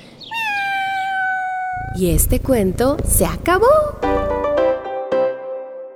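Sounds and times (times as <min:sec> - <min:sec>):
cat meowing: 0:00.2 - 0:02.0
speech: 0:02.0 - 0:04.2.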